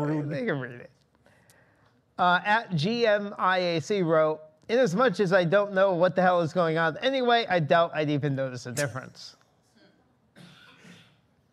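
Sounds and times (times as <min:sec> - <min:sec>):
speech: 0:00.0 - 0:01.0, 0:02.2 - 0:09.4
people coughing: 0:09.8 - 0:11.3.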